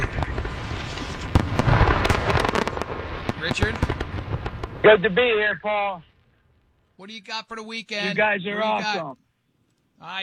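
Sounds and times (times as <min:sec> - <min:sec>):
fireworks exploding at a fireworks show: 0:00.0 - 0:06.8
speech: 0:03.5 - 0:04.0, 0:04.8 - 0:06.1, 0:07.0 - 0:09.2, 0:10.0 - 0:10.2.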